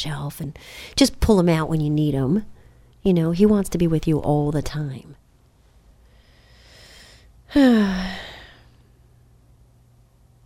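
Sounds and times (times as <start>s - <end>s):
speech: 0.0s - 5.2s, 7.5s - 8.3s
heavy exhale with a voiced falling groan: 6.3s - 8.8s.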